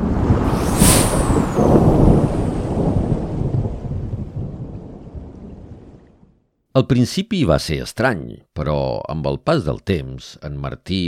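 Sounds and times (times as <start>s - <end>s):
loud thunderclap rolling into deep rumble: 0.0s - 6.4s
steady rain hissing: 0.3s - 5.0s
speech: 6.8s - 11.0s.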